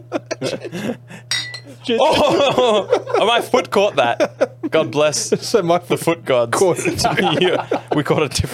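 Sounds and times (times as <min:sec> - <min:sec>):
speech: 0:00.0 - 0:01.0, 0:01.8 - 0:08.5
laughter: 0:00.0 - 0:05.8, 0:06.6 - 0:08.5
low steady hum: 0:00.0 - 0:08.5
glass bottles clinking together in a cheers toast: 0:01.3 - 0:01.8.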